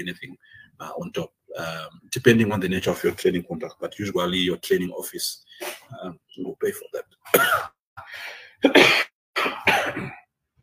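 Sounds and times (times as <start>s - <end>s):
speech: 0.0s - 10.1s
harsh raspy coughs: 7.3s - 7.8s, 8.6s - 10.3s.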